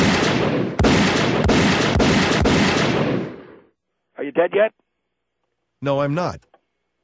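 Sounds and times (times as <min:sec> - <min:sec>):
gunshots: 0:00.0 - 0:03.7
speech: 0:04.4 - 0:04.8, 0:05.8 - 0:06.5.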